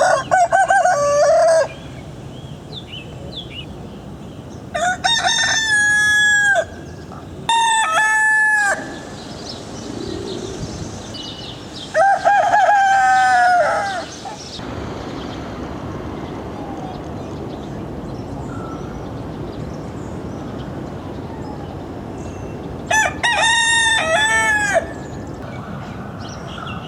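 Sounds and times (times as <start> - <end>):
male domestic chicken Gallus gallus domesticus crowing: 0.0 - 1.8, 4.7 - 6.8, 7.5 - 9.2, 11.9 - 14.4, 22.9 - 25.1
steady low hiss: 0.0 - 26.8.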